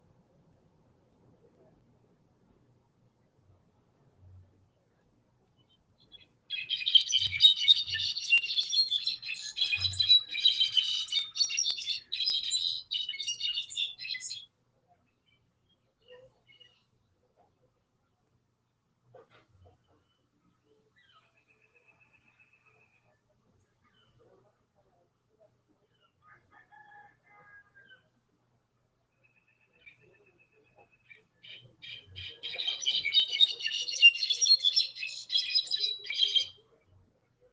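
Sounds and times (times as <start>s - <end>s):
goldfinch: 6.5s - 14.4s, 30.8s - 36.6s.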